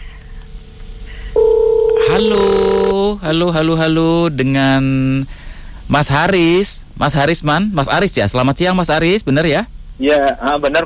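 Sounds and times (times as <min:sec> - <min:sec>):
telephone dial tone: 0:01.4 - 0:02.1
telephone connecting ring tone: 0:01.4 - 0:03.0
speech: 0:02.1 - 0:10.8.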